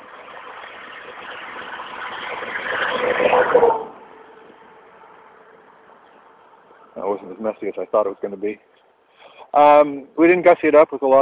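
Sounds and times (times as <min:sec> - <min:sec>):
big truck passing by: 0:00.0 - 0:08.6
speech: 0:07.2 - 0:08.8, 0:09.5 - 0:11.2.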